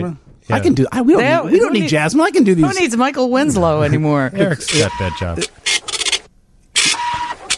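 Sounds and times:
speech: 0.0 - 6.0
voice imitating a printer: 4.5 - 5.5.

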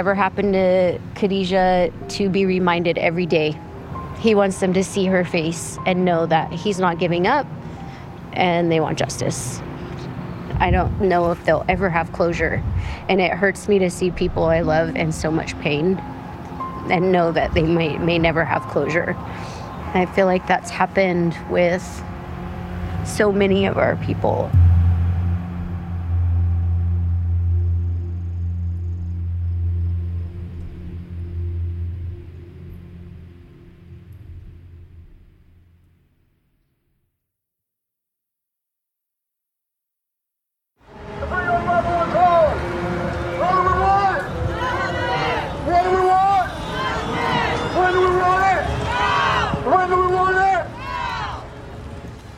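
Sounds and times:
speech: 0.0 - 7.6, 8.4 - 9.7, 10.6 - 16.2, 16.8 - 22.1, 23.0 - 24.7
steady low rumble: 22.9 - 35.9
rally crowd of many voices calling and chanting in a street in Northern California: 24.5 - 29.7, 40.9 - 52.2.

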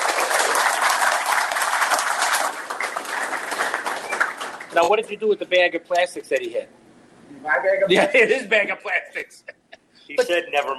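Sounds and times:
crowd applauding: 0.0 - 4.9
speech: 4.8 - 6.8, 7.4 - 10.7.

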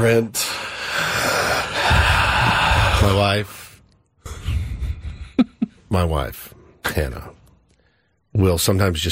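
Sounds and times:
speech: 0.0 - 0.4, 3.0 - 3.6, 5.9 - 7.4, 8.4 - 9.0
heavy breathing with noisy breathy exhales and gasp-like intake: 0.4 - 5.4.

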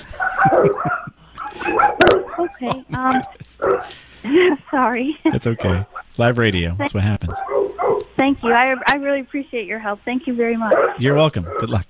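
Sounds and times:
laughter: 0.0 - 6.5
dog barking and yipping: 0.1 - 4.0, 5.2 - 6.0, 7.3 - 9.0, 10.6 - 11.8
speech: 0.4 - 11.8.

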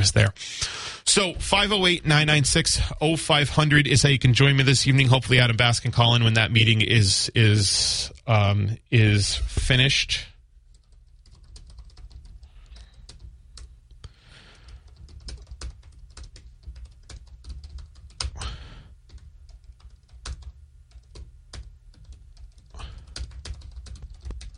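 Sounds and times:
speech: 0.0 - 10.3
low hum: 0.0 - 24.5
furious typing on computer keyboard keys: 10.7 - 13.7, 14.5 - 24.5.

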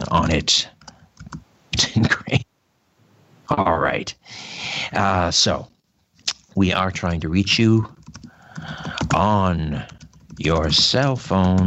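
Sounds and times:
speech: 0.1 - 0.8, 2.0 - 2.3, 3.5 - 5.7, 6.6 - 8.0, 8.6 - 11.6
typing a message on a computer keyboard: 0.1 - 1.4, 7.9 - 11.6.

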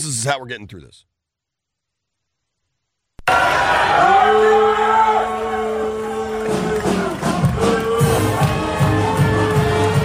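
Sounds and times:
speech: 0.0 - 1.1
large crowd booing: 3.2 - 10.0
band playing punchy beats and held notes: 6.3 - 10.0.

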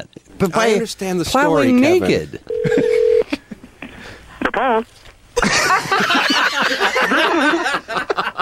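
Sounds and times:
speech: 0.0 - 3.0, 4.6 - 8.2
telephone dial tone: 2.5 - 3.2
people laughing: 2.6 - 3.8, 5.4 - 8.3.

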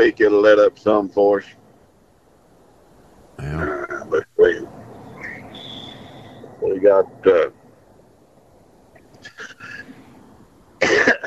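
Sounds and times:
speech: 0.0 - 1.6, 3.4 - 4.6, 6.7 - 7.6
laughter: 9.2 - 10.0
person with a slight morning cough coughing: 9.3 - 9.8, 10.8 - 11.2.

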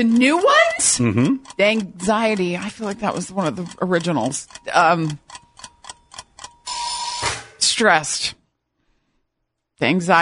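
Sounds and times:
speech: 0.0 - 5.3, 7.7 - 8.4, 9.8 - 10.2
quiz countdown timer ticking: 0.0 - 7.1.

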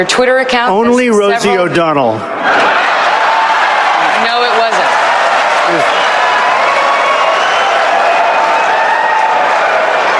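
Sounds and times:
speech: 0.0 - 2.8
large crowd cheering and applauding: 2.3 - 10.1.

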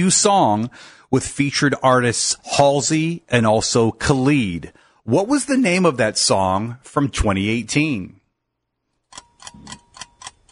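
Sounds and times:
speech: 0.0 - 8.2
countdown timer ticking during a trivia quiz question: 9.1 - 10.5.

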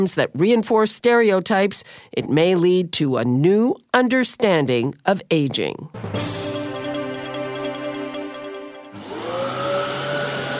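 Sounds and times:
speech: 0.0 - 6.4
vacuum cleaner running with loud motor whine: 9.0 - 10.5.

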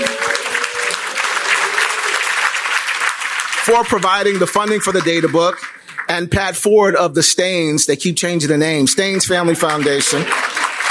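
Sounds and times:
audience applause at a presentation of a community data book: 0.0 - 6.2, 9.2 - 10.8
speech: 3.7 - 10.6.

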